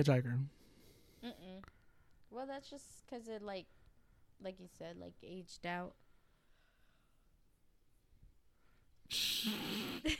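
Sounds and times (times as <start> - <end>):
speech: 0.0 - 0.6, 2.3 - 3.8, 4.4 - 6.0, 9.1 - 10.1
person yawning from afternoon tiredness: 9.1 - 10.1.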